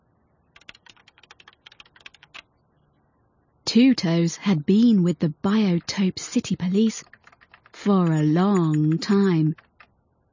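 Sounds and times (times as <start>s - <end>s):
claws tapping slowly on a computer keyboard: 0.6s - 2.5s, 4.7s - 10.0s
speech: 3.7s - 7.2s, 7.8s - 9.6s.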